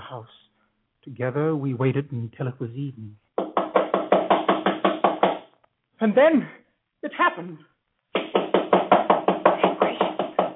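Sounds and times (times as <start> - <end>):
speech: 0.1 - 0.4, 1.0 - 3.2, 6.0 - 7.7
heavy knocking on a wooden door: 3.4 - 5.4, 8.2 - 10.5.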